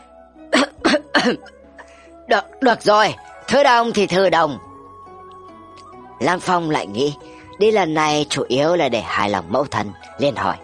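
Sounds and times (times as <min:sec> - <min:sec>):
dry cough: 0:00.5 - 0:01.5
speech: 0:01.2 - 0:01.6, 0:02.3 - 0:04.7, 0:06.2 - 0:10.6.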